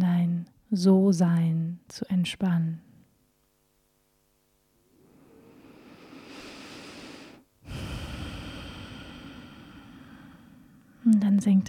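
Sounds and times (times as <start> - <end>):
speech: 0.7 - 2.9, 11.1 - 11.6
deep breath in and out: 4.9 - 11.1.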